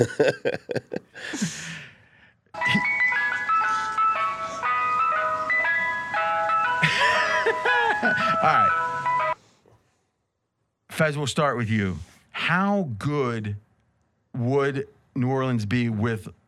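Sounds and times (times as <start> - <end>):
choppy chuckling bursts: 0.0 - 1.2, 2.6 - 4.3, 6.7 - 8.8
speech: 0.0 - 1.9, 11.0 - 13.6, 14.4 - 16.4
ice cream truck jingle of electronic notes: 2.6 - 9.4.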